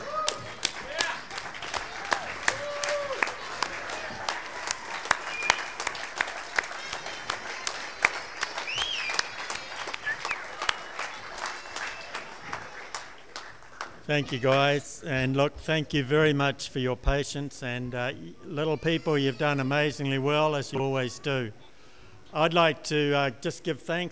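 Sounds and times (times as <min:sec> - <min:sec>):
room full of people applauding: 0:00.0 - 0:14.8
scattered voices and cheers: 0:00.0 - 0:15.0
speech: 0:14.1 - 0:21.7, 0:22.3 - 0:24.1.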